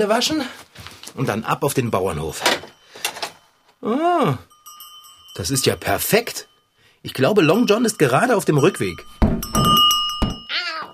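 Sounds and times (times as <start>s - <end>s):
speech: 0.0s - 0.6s, 1.2s - 2.7s, 3.8s - 4.5s, 5.4s - 9.2s
male cat's collar bell jingling: 4.5s - 10.9s
soft thumps: 9.1s - 10.5s
male cat meowing: 10.5s - 10.9s.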